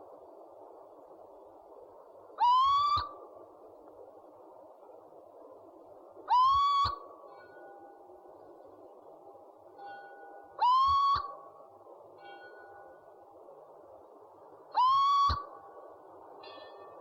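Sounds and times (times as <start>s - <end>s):
owl calls: 2.4s - 3.2s, 6.3s - 7.0s, 10.6s - 11.4s, 14.7s - 15.5s.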